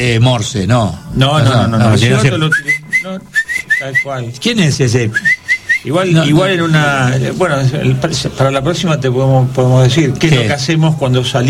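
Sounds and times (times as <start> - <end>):
speech: 0.0 - 11.4
whistle blown in short sharp rising chirps: 2.4 - 4.2, 5.1 - 6.0.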